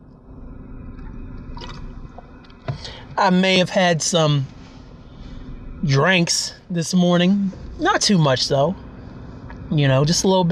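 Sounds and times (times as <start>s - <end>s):
water sloshing and swirling inside a water bottle: 0.9s - 3.2s
speech: 3.2s - 4.5s, 5.8s - 8.8s, 9.7s - 10.5s.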